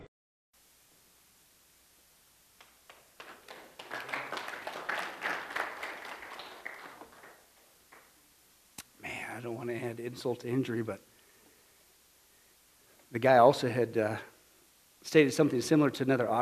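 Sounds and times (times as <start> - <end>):
audience applause: 2.6 - 8.1
speech: 9.4 - 11.1, 13.2 - 14.3, 15.0 - 16.4.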